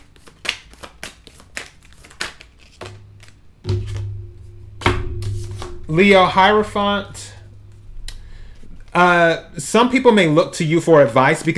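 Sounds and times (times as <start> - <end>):
tarot cards being shuffled and drawn: 0.0 - 4.0
low steady hum: 2.9 - 10.7
speech: 5.9 - 7.2, 9.0 - 11.5.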